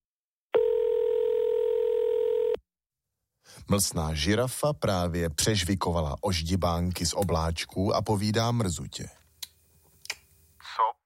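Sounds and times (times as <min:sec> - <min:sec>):
telephone dial tone: 0:00.6 - 0:02.6
speech: 0:03.6 - 0:09.2.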